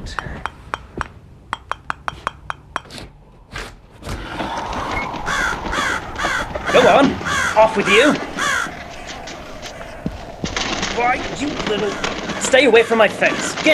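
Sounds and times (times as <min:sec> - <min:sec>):
speech: 0:00.1 - 0:00.5, 0:06.8 - 0:08.3, 0:11.0 - 0:13.7
bird pecking at a window glass: 0:00.4 - 0:02.9
wings flapping: 0:04.0 - 0:13.7
crow-like caws: 0:04.2 - 0:13.7.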